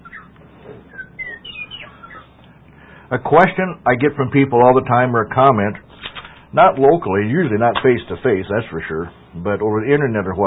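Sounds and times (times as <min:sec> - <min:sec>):
small bird chirping in short high whistled notes: 0:00.0 - 0:02.4
low hum: 0:00.0 - 0:10.4
speech: 0:03.1 - 0:05.9, 0:06.5 - 0:10.4.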